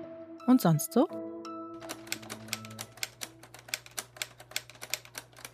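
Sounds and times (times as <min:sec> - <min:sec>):
speech: 0:00.6 - 0:01.2
typing on a typewriter built from Lego bricks: 0:01.8 - 0:05.5.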